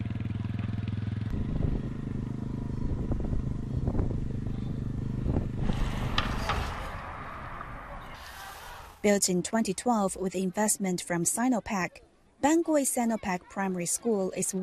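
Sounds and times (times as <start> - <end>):
motorcycle engine running and revving: 0.0 - 7.7
speech: 9.0 - 14.6.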